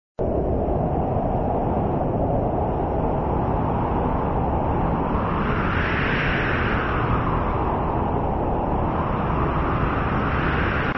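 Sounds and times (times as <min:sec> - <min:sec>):
wind: 0:00.2 - 0:10.9.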